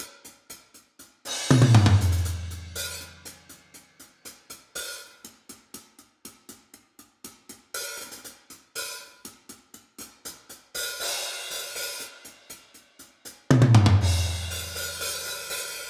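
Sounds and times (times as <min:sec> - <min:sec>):
drum mix without kick or snare: 0:01.3 - 0:03.6, 0:13.5 - 0:15.7.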